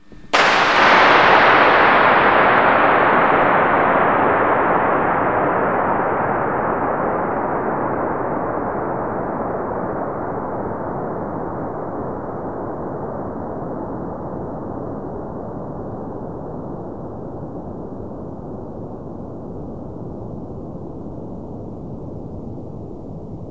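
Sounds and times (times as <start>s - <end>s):
single gunshot with very long echo: 0.0s - 12.8s.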